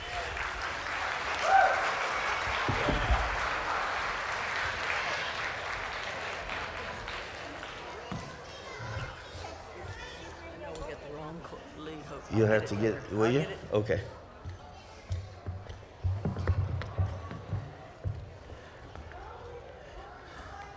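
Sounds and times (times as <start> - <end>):
crowd applauding: 0.0 - 8.7
scattered voices and murmurs: 0.0 - 20.7
speech: 12.4 - 14.2.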